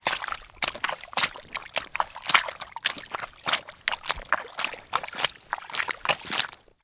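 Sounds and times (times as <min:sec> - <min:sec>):
foley footsteps in muddy squelchy puddle: 0:00.0 - 0:06.8.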